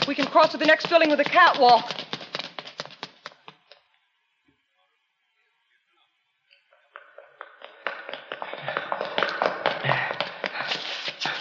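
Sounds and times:
people's hurried footsteps running up stairs: 0.0s - 3.8s, 6.8s - 11.3s
speech: 0.1s - 2.0s.

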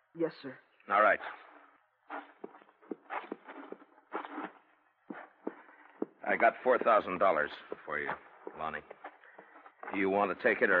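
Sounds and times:
speech: 0.2s - 1.4s, 6.2s - 9.0s, 9.9s - 10.7s
horse hooves clip-clopping on hard ground at a walk: 2.2s - 10.7s.

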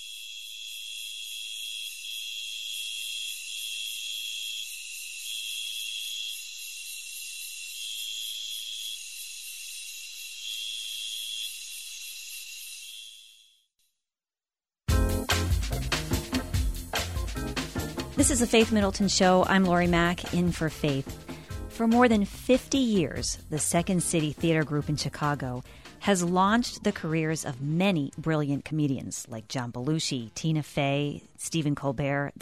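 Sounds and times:
two-spotted tree cricket continuous trill: 0.0s - 13.6s
loud music: 14.9s - 26.4s
speech: 18.3s - 32.4s.

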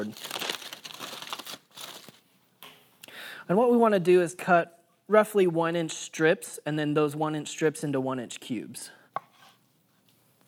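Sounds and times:
speech: 0.0s - 0.4s, 3.5s - 9.0s
aluminium foil crinkling as it is opened from around rested smoked meat: 0.0s - 2.2s.

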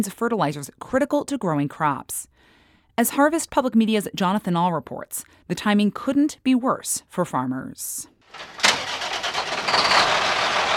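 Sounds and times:
speech: 0.0s - 2.3s, 3.0s - 8.6s
truck engine running while parking: 8.3s - 10.7s.

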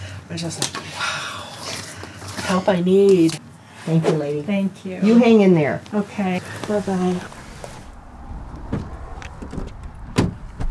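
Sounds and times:
speech: 0.3s - 1.3s, 2.5s - 7.4s
steady low vehicle rumble: 6.8s - 10.6s
car doors shutting: 7.4s - 10.6s.

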